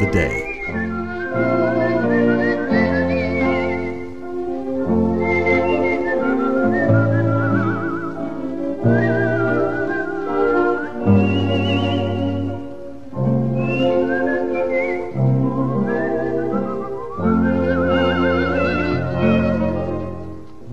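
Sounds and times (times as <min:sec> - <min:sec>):
speech: 0:00.0 - 0:00.8
band accompaniment with low sustained chords: 0:00.0 - 0:02.3
virtuoso whistling solo with flute-like trills: 0:00.0 - 0:12.8, 0:13.5 - 0:19.9.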